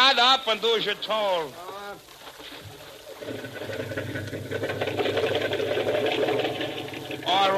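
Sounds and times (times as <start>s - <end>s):
speech: 0.4s - 2.1s, 3.2s - 5.3s, 7.3s - 7.5s
small outboard boat motor starting and chugging: 2.6s - 7.5s.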